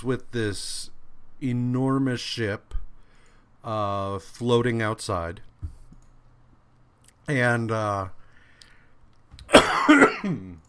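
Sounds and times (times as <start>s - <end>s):
speech: 0.0s - 2.8s, 3.6s - 5.5s, 7.3s - 8.2s, 9.5s - 10.6s
person coughing: 9.5s - 10.6s.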